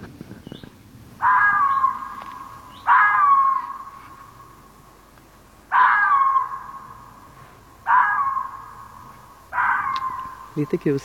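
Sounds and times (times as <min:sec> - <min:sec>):
female red fox barking: 0:01.2 - 0:04.2, 0:05.7 - 0:07.2, 0:07.8 - 0:10.6
speech: 0:10.6 - 0:11.0.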